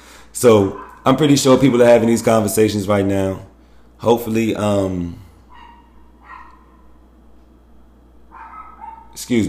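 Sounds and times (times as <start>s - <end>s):
steady low hum: 0.0s - 9.4s
speech: 0.4s - 5.2s, 9.2s - 9.4s
dog barking: 0.7s - 1.2s, 5.5s - 7.0s, 8.3s - 9.2s.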